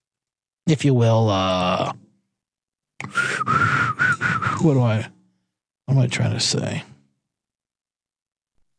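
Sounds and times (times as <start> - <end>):
speech: 0.7 - 2.0, 4.6 - 5.2, 5.9 - 6.9
person whistling short clear notes: 3.0 - 4.8.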